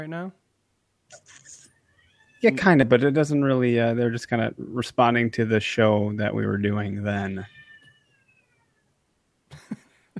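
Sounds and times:
speech: 0.0 - 0.4, 1.1 - 1.6, 2.4 - 7.6
faint cat meow: 1.1 - 2.6, 7.1 - 9.0.

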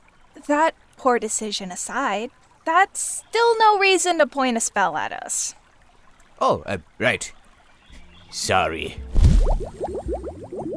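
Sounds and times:
speech: 0.4 - 5.6, 6.4 - 7.4, 8.3 - 10.0
stream of bubbly rising blips from soap bubbles: 9.2 - 10.7.

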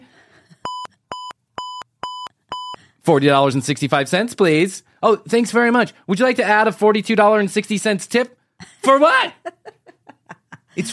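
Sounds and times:
checkout scanner beeps: 0.7 - 2.8
speech: 3.1 - 9.5, 10.8 - 10.9
laughter: 8.6 - 10.9.

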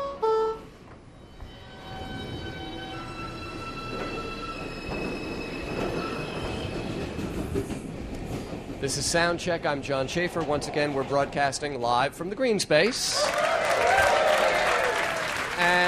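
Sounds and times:
New York City subway train rumbling: 0.0 - 15.8
speech: 8.8 - 13.4.

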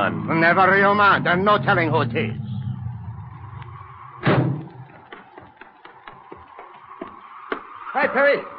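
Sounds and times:
speech: 0.0 - 2.4, 8.0 - 8.5
car engine rumble: 0.0 - 5.6.

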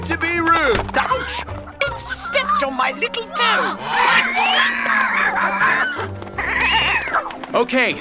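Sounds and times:
speech: 0.1 - 1.8, 2.6 - 6.2, 7.5 - 7.9
goat bleating: 1.0 - 7.2.

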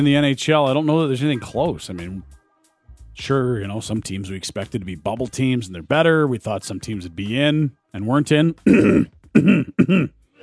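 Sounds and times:
speech: 0.0 - 2.4, 3.2 - 10.2
throat clearing: 8.6 - 10.4.

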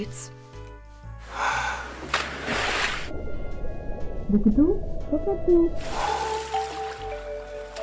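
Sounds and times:
speech: 0.0 - 0.4, 4.3 - 6.0
water splashing in a swimming pool: 1.8 - 3.2, 5.8 - 7.8.

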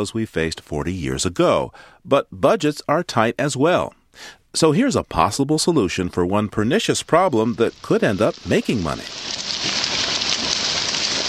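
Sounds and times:
speech: 0.0 - 9.5
Asian carp leaping and splashing in a river: 7.6 - 11.2.

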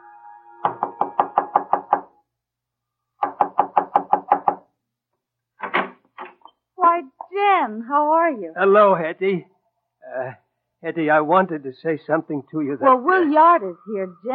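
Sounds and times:
man knocking firmly on the wooden door of a house: 0.6 - 2.1, 3.2 - 4.7
speech: 7.6 - 9.5, 10.2 - 14.3.

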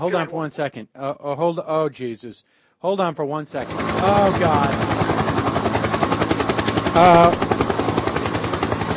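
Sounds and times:
speech: 0.0 - 5.2, 7.0 - 7.6
private helicopter rotor blades chopping overhead: 3.6 - 8.9.

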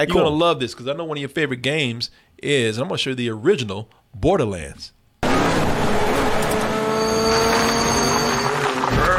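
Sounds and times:
speech: 0.0 - 5.0
car engine screaming at high revs: 5.2 - 9.1
tires squealing: 5.2 - 9.1.

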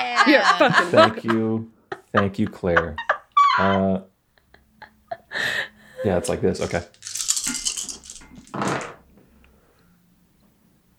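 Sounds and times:
speech: 0.0 - 4.1, 5.4 - 7.2
laughter: 0.0 - 6.8
handful of dice clattering across a hard surface: 6.6 - 8.6.

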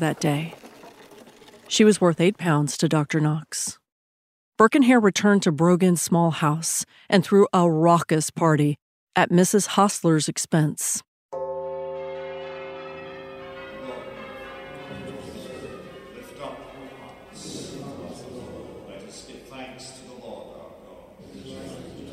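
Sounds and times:
speech: 0.0 - 0.6, 1.7 - 3.8, 4.6 - 11.1
church bell ringing before early morning mass: 11.4 - 19.1
indistinct murmuring: 13.8 - 22.1.

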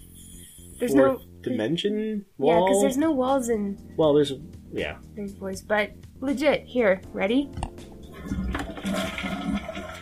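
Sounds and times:
speech: 0.8 - 8.4
toilet flushing with rushing gurgling water: 8.1 - 10.0.

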